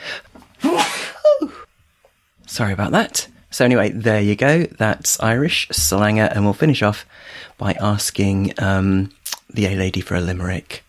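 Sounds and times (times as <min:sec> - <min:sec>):
sneeze: 0:00.6 - 0:01.3
speech: 0:02.6 - 0:10.8.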